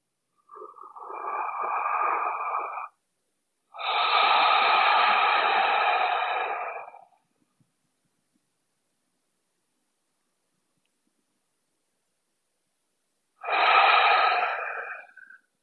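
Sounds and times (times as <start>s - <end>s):
deep breaths through the nose inhaling a scent from hands and wrists: 0.5s - 3.0s, 3.8s - 7.2s, 13.4s - 15.4s.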